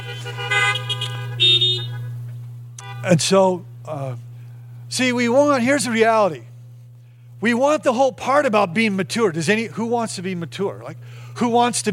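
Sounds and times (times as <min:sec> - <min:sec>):
several car horns honking in short overlapping blasts: 0:00.0 - 0:03.4
steady low hum: 0:00.0 - 0:11.8
speech: 0:03.0 - 0:04.3, 0:04.9 - 0:06.5, 0:07.4 - 0:11.9.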